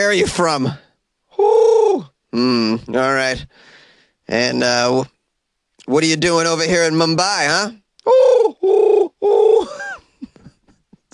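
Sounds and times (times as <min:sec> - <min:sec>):
speech: 0:00.0 - 0:00.8, 0:02.0 - 0:05.2, 0:05.9 - 0:09.4
human voice imitating pigeon cooing: 0:01.3 - 0:02.9, 0:08.0 - 0:10.0.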